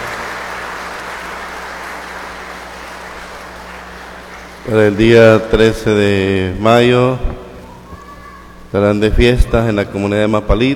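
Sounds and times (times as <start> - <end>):
sustained applause from a sizable crowd: 0.0 - 5.4
faint low electrical hum: 0.0 - 10.7
speech: 4.7 - 7.4, 8.7 - 10.7.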